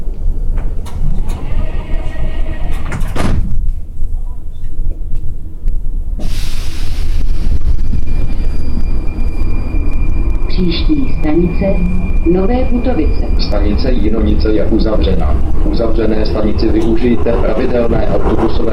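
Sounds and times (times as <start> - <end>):
metro train carriage rumbling: 0.0 - 18.7
metro train sliding doors closing: 0.2 - 3.7, 6.2 - 9.0, 15.3 - 18.7
speech: 10.6 - 18.7.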